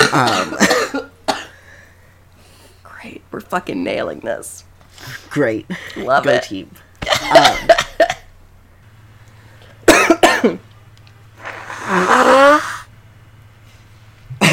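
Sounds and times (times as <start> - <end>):
person coughing harshly: 0.0 - 1.6, 7.0 - 8.3, 9.8 - 10.6, 14.4 - 14.5
faint steady hum: 0.0 - 14.5
speech: 0.1 - 0.5, 3.5 - 7.8, 10.4 - 10.7
rasping congested throat sound: 11.4 - 12.9.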